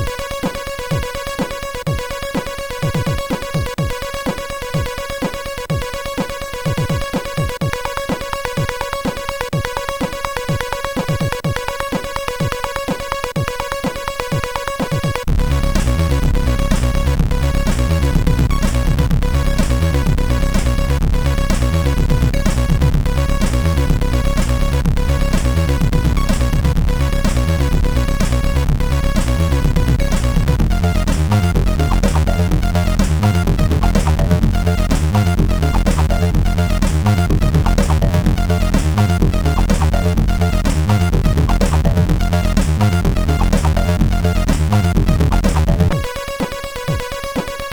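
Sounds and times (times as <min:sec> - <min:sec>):
MOS 6581 R4 synthesizer chip sound: 0:00.0 - 0:47.7.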